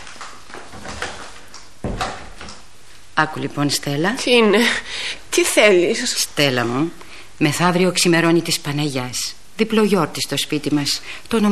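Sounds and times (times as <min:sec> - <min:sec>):
door pulled shut in a home: 0:01.8 - 0:02.6
speech: 0:03.2 - 0:11.5.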